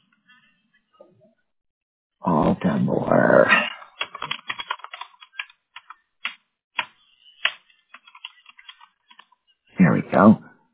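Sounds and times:
speech: 2.2s - 3.7s
keyboard typing as someone enters text into a form: 4.0s - 9.4s.

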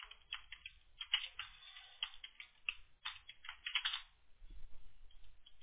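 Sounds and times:
typing on a computer keyboard: 0.0s - 4.1s.

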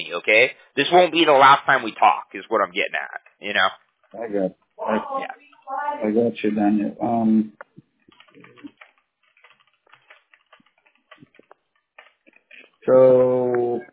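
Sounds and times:
person speaking loudly: 0.0s - 7.5s, 12.9s - 13.8s
speech: 0.1s - 7.6s, 12.8s - 13.9s
quick light computer keyboard taps: 7.6s - 12.7s.

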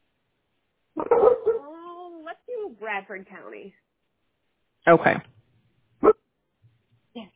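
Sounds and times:
dog barking sharply: 1.0s - 1.6s
dog yipping quietly: 1.0s - 1.8s
speech: 2.7s - 3.9s, 4.8s - 5.3s.

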